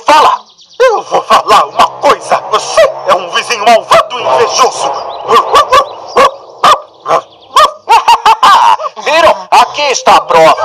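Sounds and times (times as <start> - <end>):
speech: 0.1 - 0.4, 3.7 - 3.9, 4.5 - 5.8, 9.8 - 10.6
laughter: 0.8 - 10.6
dog barking in short sharp bursts: 5.3 - 9.8.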